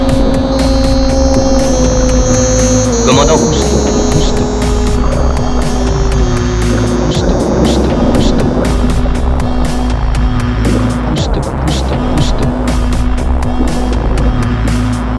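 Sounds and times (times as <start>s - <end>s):
deep hum: 0.0s - 15.1s
undersea research ship engine droning: 0.0s - 15.1s.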